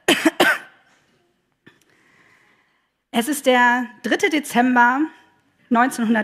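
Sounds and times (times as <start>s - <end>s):
person clearing throat: 0.0s - 0.9s
speech: 3.2s - 6.2s.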